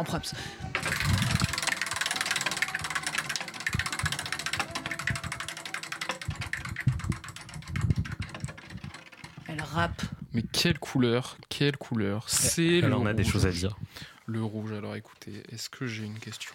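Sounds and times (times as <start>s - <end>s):
speech: 0.0s - 0.8s, 9.6s - 16.5s
game show prize wheel being spun, ratcheting clicks: 0.5s - 10.1s.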